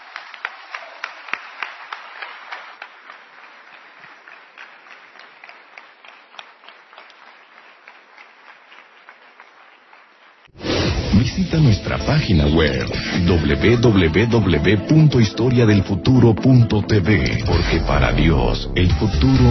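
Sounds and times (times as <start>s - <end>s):
audience applause at a religious sermon: 0.0s - 10.5s
speech: 11.4s - 19.4s.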